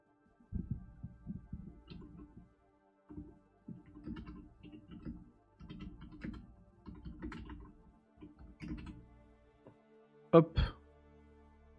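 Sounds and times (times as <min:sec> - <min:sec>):
typing a message on a keyboard: 0:00.5 - 0:02.5, 0:03.1 - 0:09.2
speech: 0:10.3 - 0:10.7.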